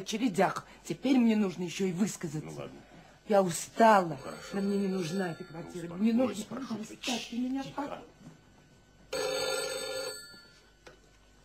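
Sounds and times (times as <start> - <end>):
speech: 0.0 - 8.1
telephone bell ringing: 4.0 - 6.5, 9.1 - 10.8.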